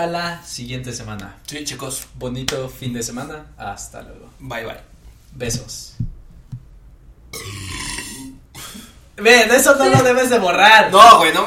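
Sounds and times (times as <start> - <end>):
speech: 0.0 - 6.1, 9.2 - 11.4
loud drawn-out burp: 7.3 - 8.9.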